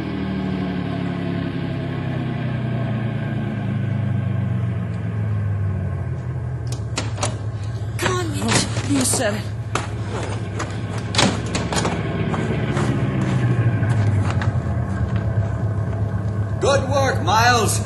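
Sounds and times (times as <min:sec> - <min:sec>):
car engine rumbling as the car slows to a stop: 0:00.0 - 0:17.8
sharp clicks and clunks: 0:06.6 - 0:12.1
speech: 0:08.9 - 0:09.6, 0:17.3 - 0:17.8.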